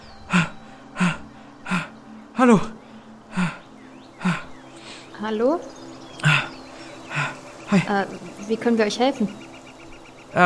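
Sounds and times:
out-of-breath man panting heavily: 0:00.2 - 0:05.1, 0:06.2 - 0:07.9
speech: 0:02.4 - 0:02.8, 0:05.2 - 0:05.8, 0:07.7 - 0:09.5.

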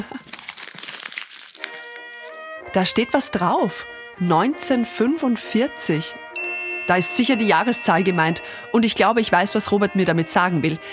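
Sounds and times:
small scrap of paper being picked up and crinkled: 0:00.0 - 0:02.6
speech: 0:02.8 - 0:06.2, 0:06.9 - 0:10.9.

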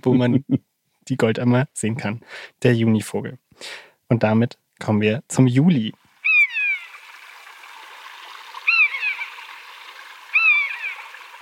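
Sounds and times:
speech: 0:00.0 - 0:06.0
steady rush of flowing water: 0:05.9 - 0:11.4
common buzzard giving descending mewing calls: 0:06.2 - 0:07.2, 0:08.5 - 0:11.4.

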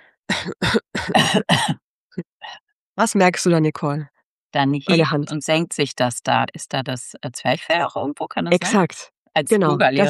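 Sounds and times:
pretend coughs made as part of a breathing exercise: 0:00.3 - 0:01.8
speech: 0:00.4 - 0:02.3, 0:03.0 - 0:10.0.

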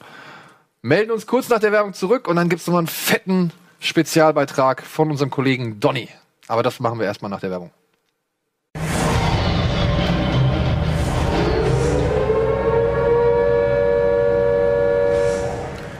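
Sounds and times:
speech: 0:00.8 - 0:07.8
loud sustained horn blast: 0:08.8 - 0:15.9.

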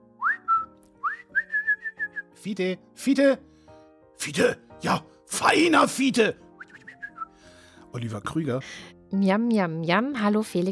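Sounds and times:
person whistling a short lilting tune: 0:00.2 - 0:02.4, 0:06.6 - 0:07.4
speech: 0:02.4 - 0:03.5, 0:04.2 - 0:06.4, 0:07.9 - 0:10.7.

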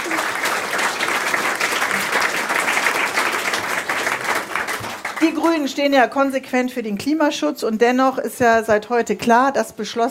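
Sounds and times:
audience applause: 0:00.0 - 0:05.7
speech: 0:05.3 - 0:10.0.

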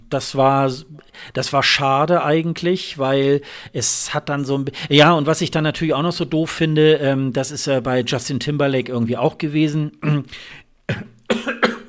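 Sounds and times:
speech: 0:00.1 - 0:11.4
coughing: 0:10.9 - 0:11.8.

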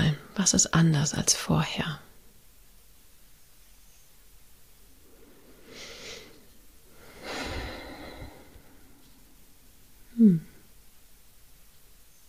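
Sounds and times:
speech: 0:00.4 - 0:02.0
deep breathing during a guided relaxation exercise: 0:04.9 - 0:10.7.

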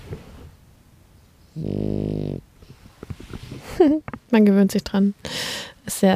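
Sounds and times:
sleeping dog snoring: 0:01.5 - 0:02.8
small rustles: 0:02.6 - 0:04.4
speech: 0:03.8 - 0:06.1.

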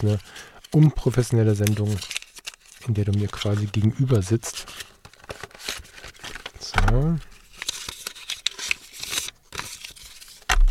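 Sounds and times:
speech: 0:00.0 - 0:02.2, 0:02.8 - 0:04.9, 0:06.8 - 0:07.3
recycled paper wrapping rustling and tearing as a card packet is opened: 0:00.0 - 0:10.6.

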